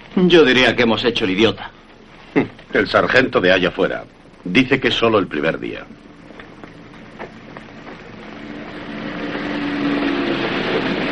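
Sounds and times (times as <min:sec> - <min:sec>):
two car engines rumbling: 0:00.0 - 0:11.1
speech: 0:00.2 - 0:06.0.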